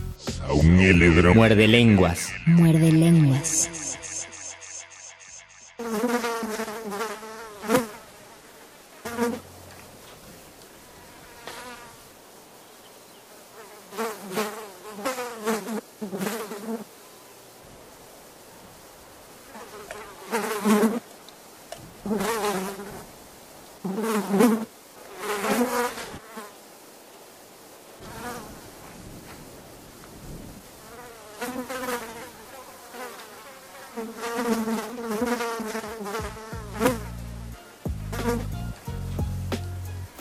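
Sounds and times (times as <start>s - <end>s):
speech: 0.5s - 3.9s
fly buzzing: 1.0s - 9.5s, 10.8s - 12.1s, 13.4s - 17.0s, 19.4s - 21.1s, 22.0s - 23.0s, 23.8s - 26.6s, 30.8s - 38.6s.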